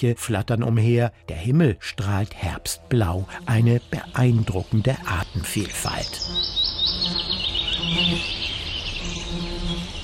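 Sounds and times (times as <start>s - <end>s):
speech: 0.0s - 7.3s, 7.9s - 8.4s
wild bees buzzing: 1.5s - 10.0s
faint bird chirps: 5.5s - 10.0s.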